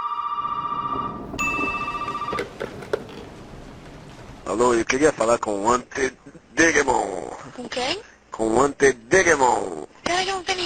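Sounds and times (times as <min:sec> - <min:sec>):
telephone ringing in a video game: 0:00.0 - 0:02.7
speech: 0:04.6 - 0:10.6.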